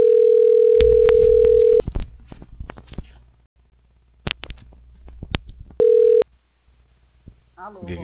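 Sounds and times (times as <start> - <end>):
telephone dial tone during call transfer: 0.0 - 1.8, 5.8 - 6.2
telephone line clicks: 0.0 - 1.8.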